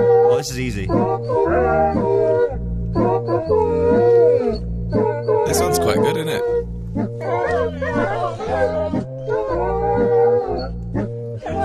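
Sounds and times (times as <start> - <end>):
speech: 0.4 - 2.3, 5.5 - 7.4
dogs howling a tune: 1.3 - 5.4, 7.0 - 11.6.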